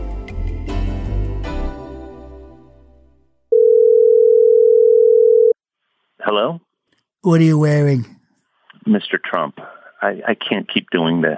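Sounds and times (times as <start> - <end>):
brief burst of music: 0.0 - 3.4
telephone dial tone before call connects: 3.5 - 5.6
speech: 6.3 - 8.2, 8.8 - 11.3.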